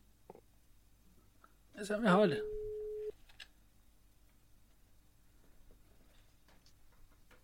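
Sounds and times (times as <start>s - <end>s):
speech: 1.8s - 2.6s
noisy open telephone line: 2.3s - 3.1s
telephone ringing tone while placing call: 2.4s - 3.1s.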